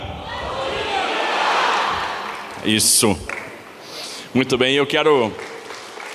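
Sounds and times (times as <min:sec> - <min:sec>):
large audience at a launch event shouting a greeting in unison: 0:00.0 - 0:02.6
speech: 0:02.6 - 0:03.3, 0:04.3 - 0:05.5.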